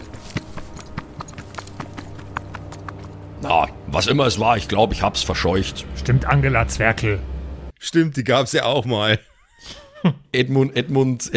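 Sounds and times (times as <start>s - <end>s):
quick footsteps scurrying away: 0.0s - 3.4s
faint continuous hum: 2.0s - 7.7s
speech: 3.4s - 11.3s.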